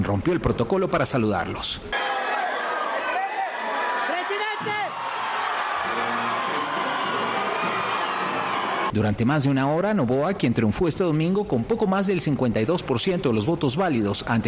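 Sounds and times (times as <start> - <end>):
speech: 0.0 - 2.2, 9.0 - 14.4
large crowd of supporters shouting and cheering at the Carondelet Palace in Quito, Ecuador: 1.9 - 9.0.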